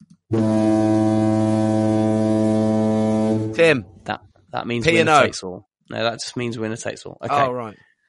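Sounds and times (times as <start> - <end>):
speech: 0.3 - 0.7, 3.6 - 7.9
foghorn blast: 0.3 - 4.0.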